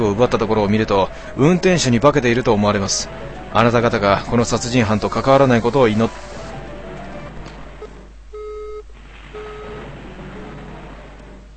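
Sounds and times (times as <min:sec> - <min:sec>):
speech: 0:00.0 - 0:06.3
hiss and hum: 0:01.0 - 0:11.5
mobile phone call disconnect tone beeps: 0:08.4 - 0:08.8.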